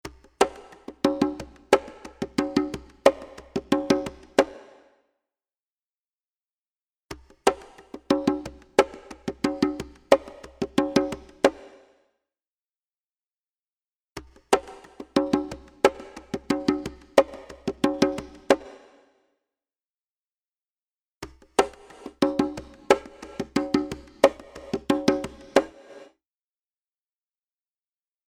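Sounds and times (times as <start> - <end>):
wet congas variations: 0.0 - 4.7, 7.1 - 11.8, 14.2 - 18.8, 21.2 - 25.9.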